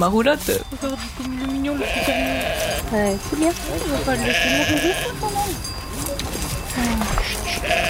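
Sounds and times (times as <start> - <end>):
speech: 0.0 - 5.7, 6.8 - 7.8
faint shuffling and hoof sounds: 0.0 - 7.8
sheep and goats bleating: 1.6 - 3.2, 3.8 - 5.5, 6.9 - 7.8.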